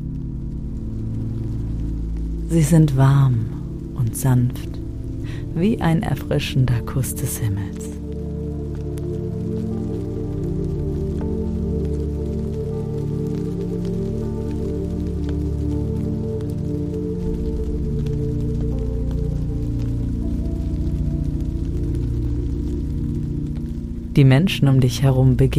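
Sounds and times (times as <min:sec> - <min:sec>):
gentle summer rain with raindrops pattering: 0:00.0 - 0:25.5
soft sustained low musical drone: 0:00.0 - 0:25.5
speech: 0:02.5 - 0:07.9, 0:24.2 - 0:25.5.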